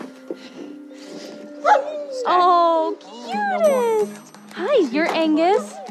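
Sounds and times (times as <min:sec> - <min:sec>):
dog whimpering: 0:01.6 - 0:04.1, 0:05.4 - 0:05.8
speech: 0:04.8 - 0:05.8.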